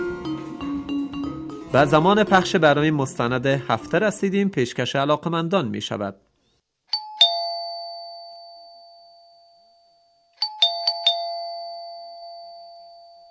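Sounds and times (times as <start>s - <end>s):
speech: 1.7s - 6.3s
doorbell chime rung at a house gate: 6.9s - 13.3s.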